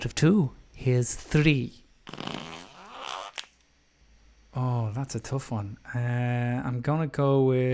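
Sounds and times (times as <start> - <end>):
speech: 0.0 - 2.2, 4.6 - 7.7
drawn-out buzzy fart: 2.0 - 3.6.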